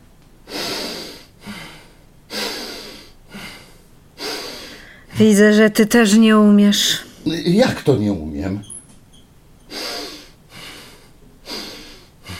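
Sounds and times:
deep breaths through the nose by a person lying down: 0:00.5 - 0:05.1, 0:09.7 - 0:12.3
speech: 0:05.2 - 0:08.7.

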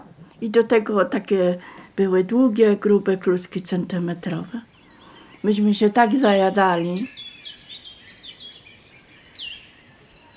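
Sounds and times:
speech: 0:00.4 - 0:04.7, 0:05.4 - 0:07.2
spring birdsong chorus on a hillside slope at Rybotycze: 0:04.4 - 0:10.3.

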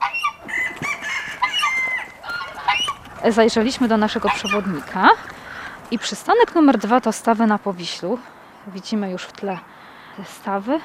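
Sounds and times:
chickens clucking in a farmyard henhouse: 0:00.0 - 0:06.2
speech: 0:03.2 - 0:10.8.

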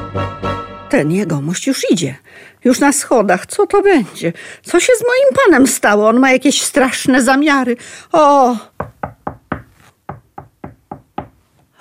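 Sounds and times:
speech: 0:00.1 - 0:08.8
knocking on a door: 0:08.8 - 0:11.4.

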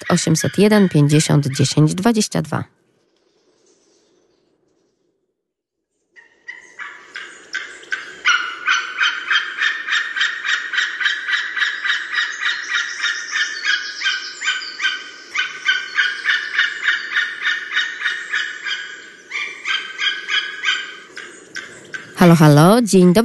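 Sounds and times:
speech: 0:00.1 - 0:02.8, 0:22.3 - 0:23.2
flock of greylag geese honking: 0:06.2 - 0:22.4.

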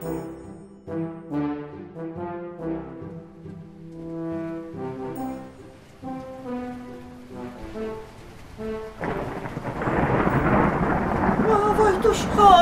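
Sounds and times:
rain downpour hiss: 0:02.6 - 0:12.6
deep rolling thunder: 0:06.6 - 0:12.6.

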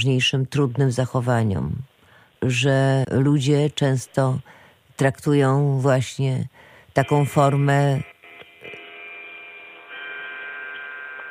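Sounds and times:
speech: 0:00.0 - 0:08.1
clock chiming with bell-like strikes: 0:07.0 - 0:11.2.

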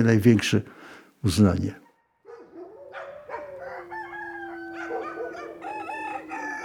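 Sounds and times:
speech: 0:00.0 - 0:01.8
roosters crowing: 0:03.2 - 0:06.6.

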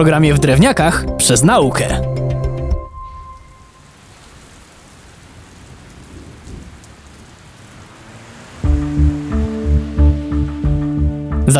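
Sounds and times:
speech: 0:00.0 - 0:02.1
music: 0:00.0 - 0:03.7, 0:08.6 - 0:11.5
faint low rumbles: 0:00.0 - 0:11.5
steady rain falling: 0:02.9 - 0:11.5.

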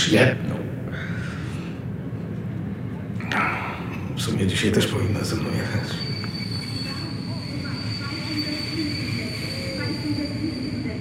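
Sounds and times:
train rolling along the rails: 0:00.0 - 0:10.9
speech: 0:00.1 - 0:00.6, 0:04.2 - 0:06.2
faint high metallic whine: 0:03.2 - 0:10.9.

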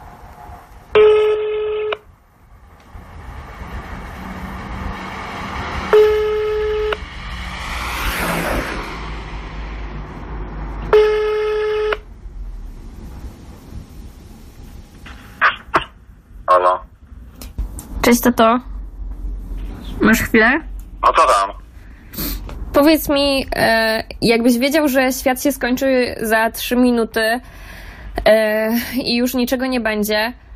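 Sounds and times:
quiet hiss and rumble: 0:00.0 - 0:07.5, 0:08.6 - 0:30.5
ringing tones of an outgoing phone call: 0:01.0 - 0:02.0
speech: 0:18.1 - 0:18.7, 0:20.0 - 0:21.6, 0:22.8 - 0:30.4.

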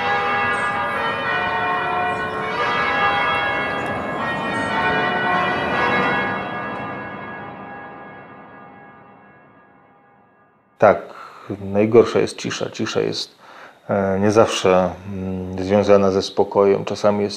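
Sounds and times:
church bells pealing in Bergamo: 0:00.0 - 0:13.2
speech: 0:10.8 - 0:17.3.

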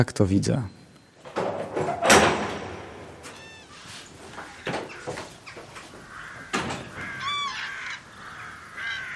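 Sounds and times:
speech: 0:00.0 - 0:00.8
faint outdoor background in Polesie: 0:00.0 - 0:09.1
several crows cawing as they fly in Polesie: 0:03.2 - 0:09.1.

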